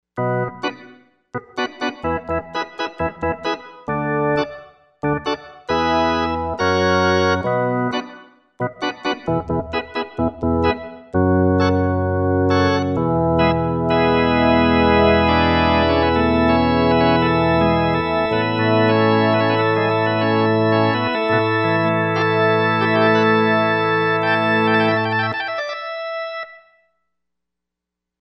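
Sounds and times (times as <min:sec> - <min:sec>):
organ with full drawbars: 0:00.2 - 0:26.8.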